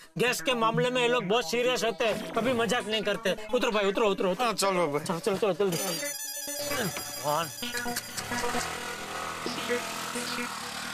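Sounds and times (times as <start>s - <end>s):
speech: 0.2s - 6.2s, 6.8s - 10.7s
mobile phone ringtone electronic melody: 5.7s - 9.1s.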